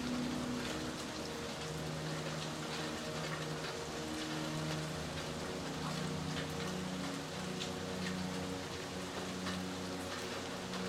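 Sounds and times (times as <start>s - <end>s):
gentle rain pattering as a storm passes through: 0.0s - 10.8s.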